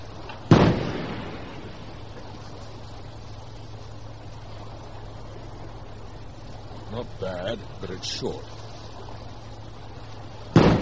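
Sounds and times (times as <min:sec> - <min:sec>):
small naval deck gun firing at long range: 0:00.5 - 0:01.5
speech: 0:07.0 - 0:08.6.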